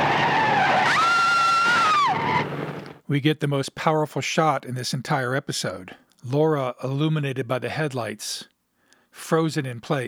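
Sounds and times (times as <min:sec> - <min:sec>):
car tire screech: 0:00.0 - 0:03.0
speech: 0:03.1 - 0:08.5, 0:09.2 - 0:10.0.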